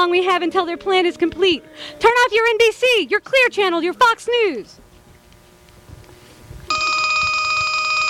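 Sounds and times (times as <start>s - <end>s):
speech: 0.0s - 4.8s
low rumble of noise: 0.0s - 7.7s
telephone ringing for an incoming call to a radio station phone patch: 6.7s - 8.0s.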